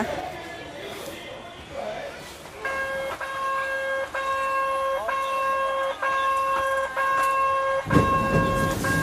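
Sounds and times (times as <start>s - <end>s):
murmur: 0.0s - 9.0s
vintage small forest train whistle: 2.6s - 9.0s.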